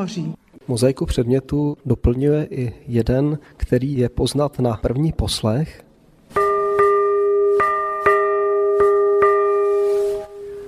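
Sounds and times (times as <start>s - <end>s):
speech: 0.0s - 5.9s
church bell ringing: 6.4s - 10.6s.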